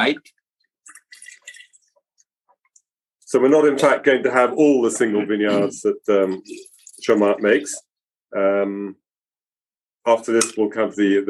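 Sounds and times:
speech: 0:00.0 - 0:00.4, 0:03.3 - 0:09.0, 0:10.0 - 0:11.2
wine pouring into a glass: 0:00.8 - 0:01.9, 0:06.2 - 0:07.8.

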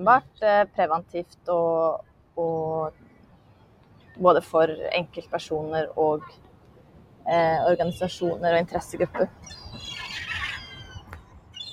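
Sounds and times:
speech: 0:00.0 - 0:03.0, 0:04.2 - 0:06.4, 0:07.2 - 0:10.1
seagulls calling: 0:09.4 - 0:11.7.

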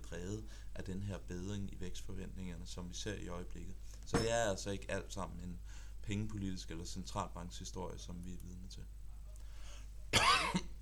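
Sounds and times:
speech: 0:00.1 - 0:09.0
single short harsh cough: 0:10.1 - 0:10.7.

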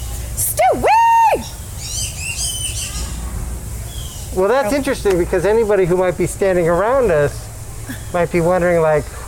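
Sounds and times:
bird warbling whistled calls: 0:01.1 - 0:03.2, 0:03.9 - 0:04.9
speech: 0:04.4 - 0:09.2.

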